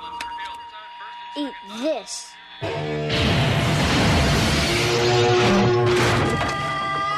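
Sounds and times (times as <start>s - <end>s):
speech: 1.4s - 3.0s
distorted electric guitar blast: 2.6s - 7.0s.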